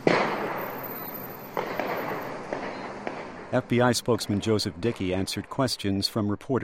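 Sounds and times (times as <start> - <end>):
gunshots echoing through a downtown area: 0.0 - 5.2
outdoor city noise: 0.0 - 6.6
speech: 3.5 - 6.6.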